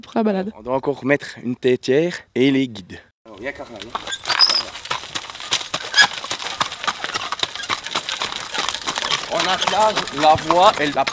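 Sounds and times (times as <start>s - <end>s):
speech: 0.0s - 4.2s, 9.3s - 11.1s
horse being hitched to a cart walking with hooves clip-clopping on hard ground: 3.3s - 11.1s.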